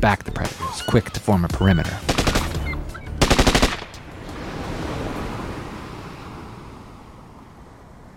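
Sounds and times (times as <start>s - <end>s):
speech: 0.0s - 2.1s
ocean waves breaking on the shore: 3.2s - 8.1s.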